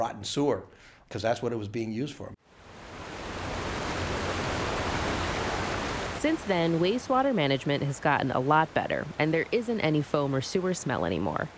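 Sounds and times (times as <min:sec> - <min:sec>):
speech: 0:00.0 - 0:02.6, 0:06.2 - 0:11.5
roar of rushing water: 0:02.5 - 0:11.5.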